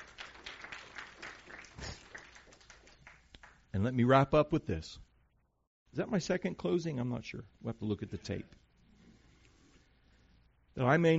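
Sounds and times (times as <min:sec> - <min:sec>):
crowd applauding: 0:00.0 - 0:03.6
speech: 0:03.7 - 0:05.1, 0:06.0 - 0:08.6, 0:10.8 - 0:11.1.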